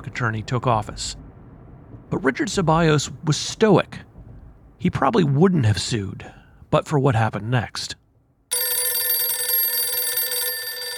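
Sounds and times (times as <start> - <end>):
speech: 0.0 - 1.2, 2.1 - 4.1, 4.8 - 8.0
telephone bell ringing with a metallic jangle: 8.5 - 10.9.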